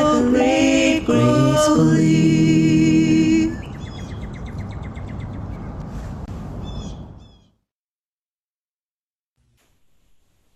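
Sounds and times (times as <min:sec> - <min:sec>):
sustained musical tone: 0:00.0 - 0:03.6
birds chirping and trilling: 0:03.4 - 0:07.6.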